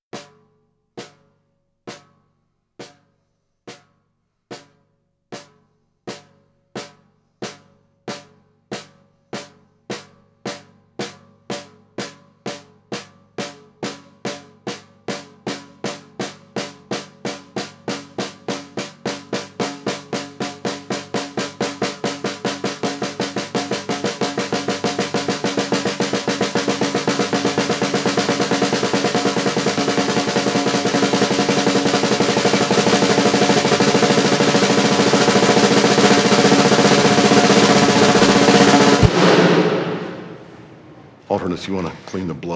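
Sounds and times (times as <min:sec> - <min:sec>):
snare drum liftoff roll: 0:13.4 - 0:41.2.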